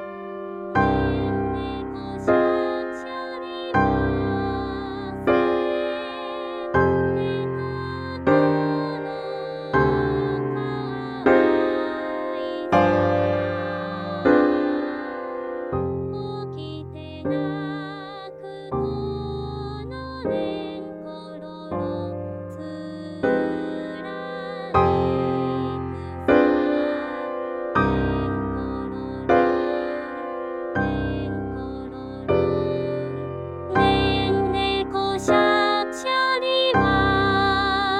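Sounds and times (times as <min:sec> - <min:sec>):
female alto singing: 0:00.6 - 0:37.9.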